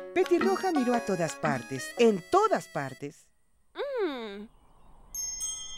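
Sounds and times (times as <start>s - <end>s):
speech: 0.3s - 3.3s
small noisy bells jingling: 5.1s - 5.7s.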